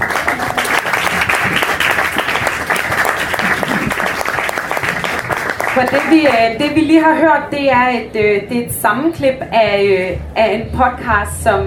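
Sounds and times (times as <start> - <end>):
large audience applauding: 0.0 - 6.5
speech: 5.8 - 11.6.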